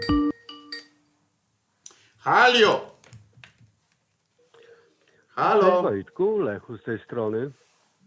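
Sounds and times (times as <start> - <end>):
phone ringtone electronic melody: 0.0 - 1.0
speech: 2.2 - 2.9, 5.4 - 7.7.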